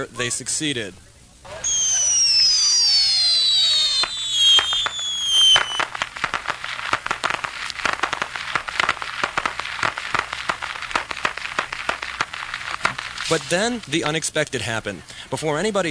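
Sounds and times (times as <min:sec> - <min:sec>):
speech: 0:00.0 - 0:01.1, 0:13.3 - 0:15.8
bottle rockets whistling at a fireworks event: 0:01.5 - 0:13.8
fireworks popping and crackling: 0:01.6 - 0:15.8.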